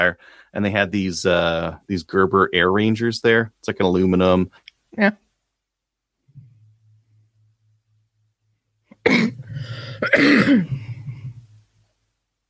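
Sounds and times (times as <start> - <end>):
speech: 0.0 - 5.2, 10.0 - 10.8
person coughing: 8.9 - 11.3.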